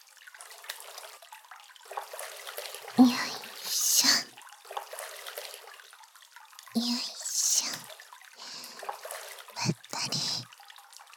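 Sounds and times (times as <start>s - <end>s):
hot bath water sloshing and moving: 0.4s - 6.0s, 7.7s - 10.0s
speech: 3.0s - 3.3s.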